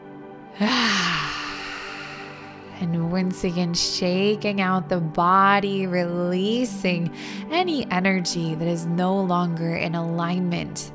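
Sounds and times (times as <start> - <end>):
speech: 0.6 - 1.1, 2.8 - 10.9
deep breath in during a guided relaxation exercise: 0.6 - 2.8.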